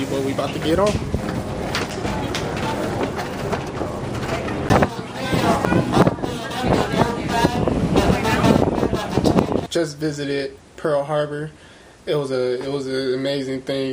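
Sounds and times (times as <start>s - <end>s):
speech: 0.0s - 1.3s, 9.8s - 13.9s
indistinct voices chatter: 0.0s - 9.7s
tour boat engine rumble on open water at Pearl Harbor: 0.0s - 9.7s
wind buffeting the microphone: 0.0s - 9.7s.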